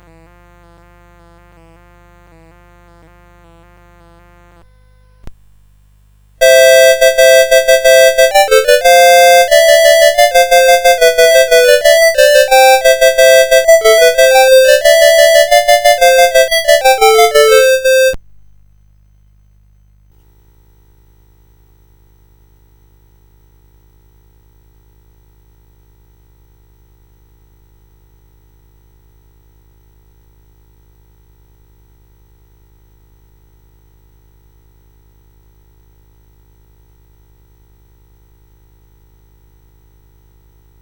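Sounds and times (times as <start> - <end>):
synthesized christmas tune on a CSG8580R5 sound chip: 6.4 - 18.2.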